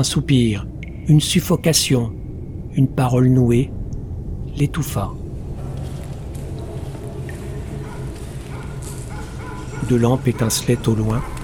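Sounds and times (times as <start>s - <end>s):
speech: 0.0s - 2.2s, 2.8s - 3.8s, 4.6s - 5.2s, 9.9s - 11.4s
steady low rumble: 0.0s - 11.4s
several dogs barking: 5.6s - 11.4s.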